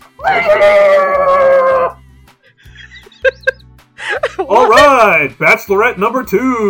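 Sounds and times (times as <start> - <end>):
person screeching shriek imitating a pterodactyl scream: 0.2 - 2.0
laughter: 2.5 - 4.6
speech: 4.7 - 6.6.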